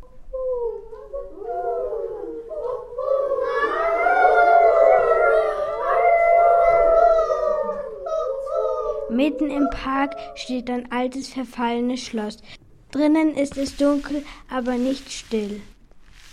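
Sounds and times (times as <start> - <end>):
several wolves howling together: 0.5 - 10.5
speech: 9.3 - 15.7.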